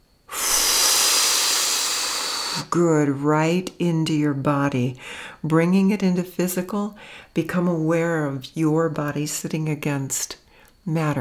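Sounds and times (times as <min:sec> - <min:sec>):
big inhale and breath blown out: 0:00.3 - 0:02.7
speech: 0:02.6 - 0:11.1.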